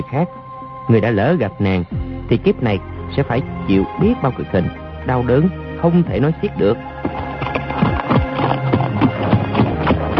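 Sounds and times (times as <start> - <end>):
speech: 0.0 - 7.2
two horses' hooves clip-clopping: 6.4 - 10.1.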